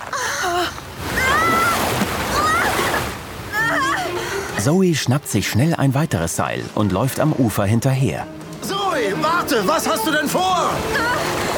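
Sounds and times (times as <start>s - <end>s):
loud turbulent rushing river water: 0.0s - 11.5s
person's short high-pitched cries or gasps: 1.2s - 4.2s
speech: 4.6s - 8.4s, 9.0s - 11.5s.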